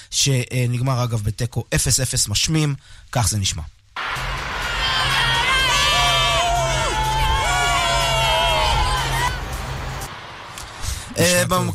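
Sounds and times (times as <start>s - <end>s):
speech: 0.1s - 3.8s, 11.2s - 11.7s
stadium crowd of primary and middle school children cheering at a football match: 4.0s - 10.1s.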